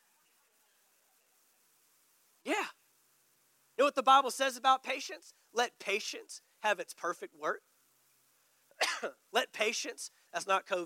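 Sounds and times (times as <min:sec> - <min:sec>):
speech: 0:03.9 - 0:07.7, 0:09.0 - 0:10.8
rough throaty coughs: 0:08.7 - 0:09.2.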